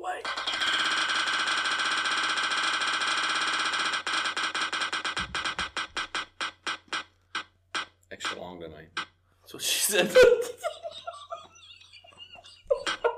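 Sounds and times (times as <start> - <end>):
prize wheel spinning and ticking: 0.2 - 9.1
laughter: 9.6 - 13.1
speech: 9.9 - 10.5.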